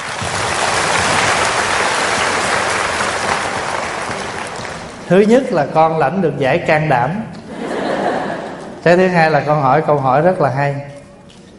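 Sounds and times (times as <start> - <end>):
crowd applauding: 0.0 - 5.2
speech: 5.1 - 7.4, 8.8 - 10.9
laughter: 7.4 - 8.9.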